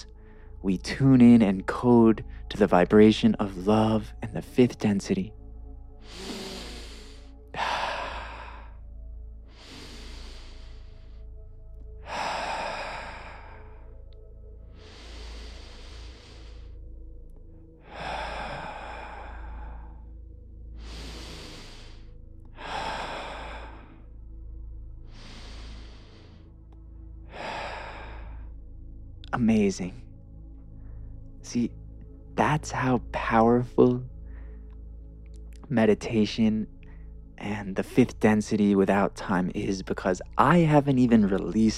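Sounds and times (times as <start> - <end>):
slow deep breathing during a guided meditation: 0.0 - 0.7, 5.4 - 29.3, 30.1 - 32.3, 34.0 - 35.6, 36.7 - 37.4
speech: 0.0 - 5.4, 32.7 - 34.1, 35.7 - 36.8, 37.4 - 41.7.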